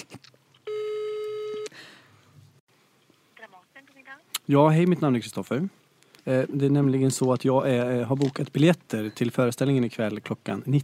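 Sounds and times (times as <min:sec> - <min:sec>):
faint noise: 0:00.0 - 0:10.8
telephone ringing tone while a call to a theatre connects: 0:00.7 - 0:01.7
speech: 0:04.5 - 0:10.8.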